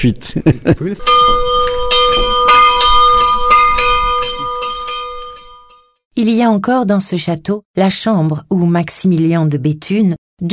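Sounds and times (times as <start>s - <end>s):
speech: 0.0s - 1.7s, 6.2s - 10.5s
laughter: 0.1s - 1.1s
large château bell rung by pulling its chain: 1.0s - 6.0s.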